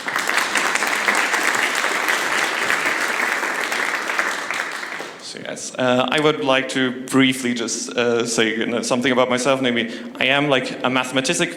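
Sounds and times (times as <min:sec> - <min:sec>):
large audience applause: 0:00.0 - 0:05.3
speech: 0:05.3 - 0:11.5.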